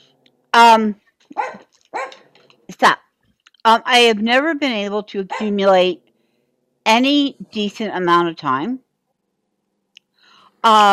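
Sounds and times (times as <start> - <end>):
speech: 0.6 - 1.6, 2.7 - 3.0, 3.6 - 6.0, 6.9 - 8.8, 10.6 - 10.9
dog barking at the mailman: 1.3 - 2.3, 5.3 - 5.6.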